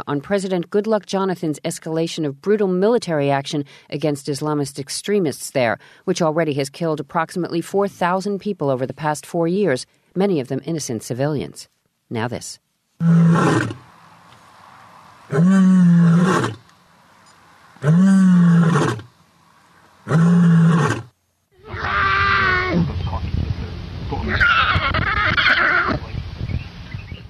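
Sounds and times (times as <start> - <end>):
speech: 0.0 - 13.9, 15.3 - 16.6, 17.8 - 18.9
African white lion roaring: 13.0 - 13.9, 15.3 - 16.6, 17.8 - 19.1, 20.0 - 22.9
white lion cub roaring, higher-pitched and strained: 13.0 - 13.9, 15.3 - 16.6, 17.8 - 19.1, 20.0 - 23.0, 24.2 - 26.0.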